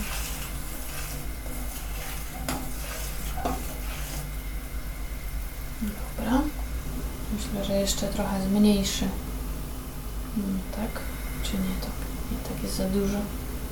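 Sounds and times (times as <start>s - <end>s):
spoon stirring soup in a pot on a gas stove: 0.0s - 4.4s
soup simmering hiss on a gas stove: 0.0s - 13.6s
speech: 7.6s - 9.3s, 10.4s - 13.4s.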